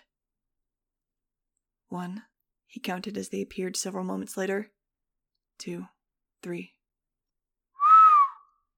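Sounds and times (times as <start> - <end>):
speech: 1.9 - 4.8, 5.6 - 6.8
low human whistle: 7.8 - 8.6.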